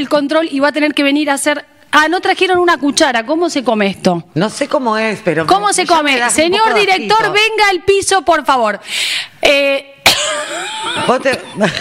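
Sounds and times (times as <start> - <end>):
speech: 0.0 - 11.7
person coughing harshly with hacking noises: 10.0 - 11.7.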